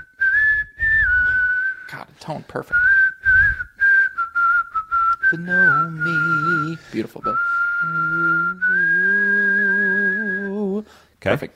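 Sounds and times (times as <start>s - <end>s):
person whistling one long steady note: 0.0s - 2.1s, 2.7s - 10.8s
speech: 2.2s - 2.9s, 5.3s - 9.1s, 10.9s - 11.5s.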